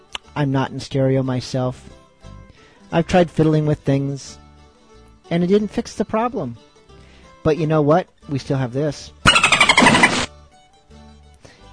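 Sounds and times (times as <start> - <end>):
speech: 0.4 - 2.0, 2.9 - 4.4, 5.3 - 6.7, 7.4 - 9.2
loud dolphin squeal with high chattering squeaks: 9.3 - 10.3.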